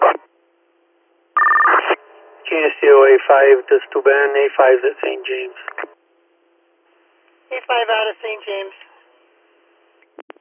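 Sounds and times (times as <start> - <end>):
radio dispatch alert tones: 1.4 - 3.0
speech: 2.5 - 5.7, 7.6 - 8.9.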